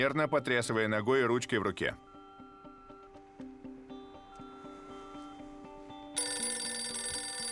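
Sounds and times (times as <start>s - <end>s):
speech: 0.0s - 2.1s
telephone ringing on a table: 6.2s - 7.5s.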